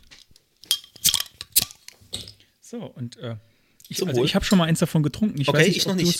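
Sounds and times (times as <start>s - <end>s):
bottle of lager being opened with a borrowed tool: 0.6s - 2.4s
speech: 2.7s - 6.1s.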